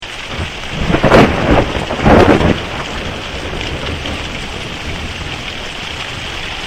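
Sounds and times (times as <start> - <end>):
thunder crack: 0.3 - 5.6.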